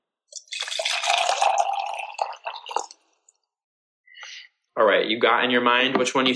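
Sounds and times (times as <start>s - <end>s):
water being poured: 0.3s - 3.4s
speech: 4.9s - 6.3s.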